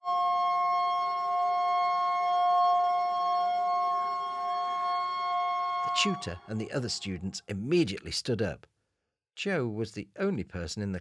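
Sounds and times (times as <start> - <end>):
loud steady siren wailing at a school: 0.0 - 7.1
speech: 6.0 - 8.7, 9.4 - 10.9.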